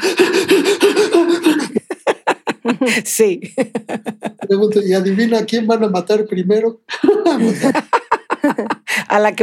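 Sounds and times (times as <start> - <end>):
voice imitating panicked hyperventilating breathing like a horror-film victim: 0.0 - 1.8
laughter: 0.0 - 5.4, 6.9 - 9.0
speech: 2.8 - 9.4.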